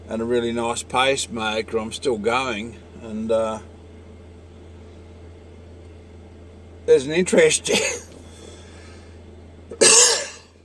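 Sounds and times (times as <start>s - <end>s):
speech: 0.1s - 3.7s, 6.9s - 8.1s
person coughing harshly from dust and fluid build-up in the lungs: 7.7s - 8.1s, 9.7s - 10.5s.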